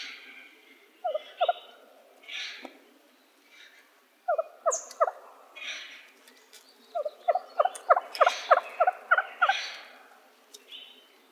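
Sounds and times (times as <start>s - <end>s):
wild turkey gobbling in Arizona: 4.3s - 5.2s, 7.0s - 9.8s
wild turkey softer hoarse calls in Arizona: 4.3s - 6.0s, 7.0s - 10.1s.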